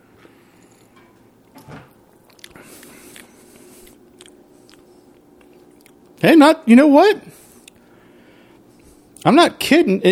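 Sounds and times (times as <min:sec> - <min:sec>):
sipping and swallowing beer from a glass: 0:02.2 - 0:06.2
speech: 0:06.2 - 0:07.4, 0:09.2 - 0:10.1.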